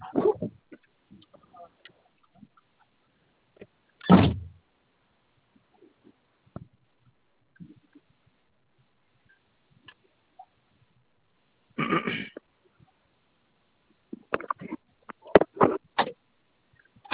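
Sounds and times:
faint clicks and rustles: 0.0 - 4.6, 5.3 - 11.1, 13.8 - 17.1
car door opening with a solid thunk: 4.1 - 4.6.

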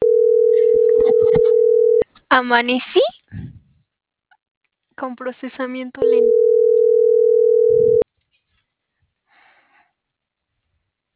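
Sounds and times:
steady telephone tone while dialing a call: 0.0 - 2.0, 6.0 - 8.0
speech: 2.3 - 3.1, 5.0 - 6.6.

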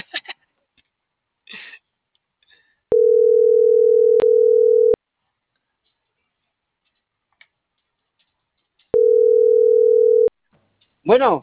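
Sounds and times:
telephone tone after a dropped call: 2.9 - 5.0, 9.0 - 10.3.

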